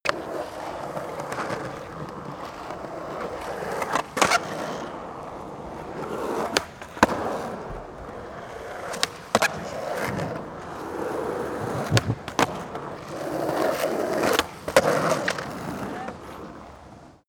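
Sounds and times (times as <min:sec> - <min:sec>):
skateboard driving: 0:00.0 - 0:17.2.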